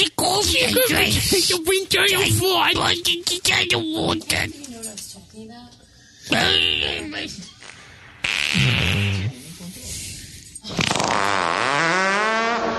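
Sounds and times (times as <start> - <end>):
speech: 0.0 - 7.5, 8.5 - 9.4, 10.7 - 11.4
voice imitating loud buzzing fart sounds: 6.3 - 9.5, 10.6 - 12.7.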